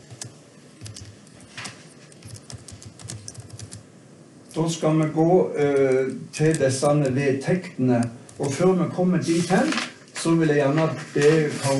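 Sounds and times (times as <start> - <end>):
keyboard keys clicking: 0.0 - 1.2, 2.1 - 3.8
speech: 4.6 - 11.7.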